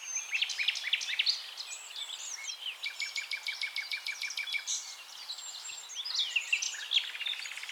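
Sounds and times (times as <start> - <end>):
nightingale singing: 0.0 - 7.7.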